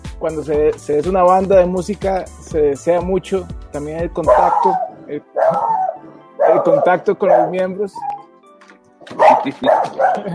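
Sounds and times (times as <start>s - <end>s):
speech: 0.2s - 5.8s, 6.4s - 8.1s, 9.1s - 10.3s
small dog barking excitedly: 4.3s - 8.3s, 9.1s - 10.3s.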